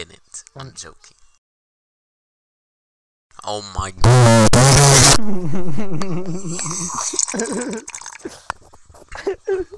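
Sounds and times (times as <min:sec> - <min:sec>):
speech: 0:00.0 - 0:01.2, 0:03.4 - 0:08.5, 0:09.2 - 0:09.7
person choking on water: 0:06.6 - 0:08.3.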